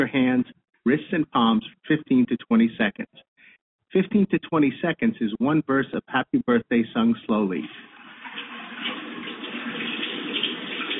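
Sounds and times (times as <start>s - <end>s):
speech: 0.0s - 3.2s, 3.9s - 7.8s
tap water running during handwashing: 7.6s - 10.9s.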